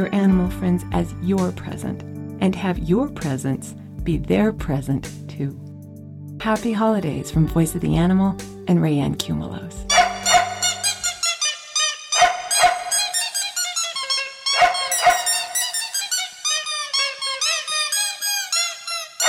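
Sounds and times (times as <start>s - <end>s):
speech: 0.0s - 5.6s, 6.4s - 9.9s
squeaky dog toys squeaking loudly: 9.9s - 19.2s.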